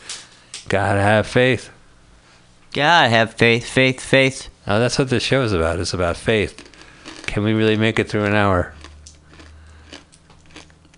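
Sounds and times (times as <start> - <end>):
low steady hum: 0.0 - 10.9
speech: 0.7 - 1.8, 2.8 - 6.7, 7.4 - 8.8
crunching and chewing of pistachios: 6.0 - 10.9.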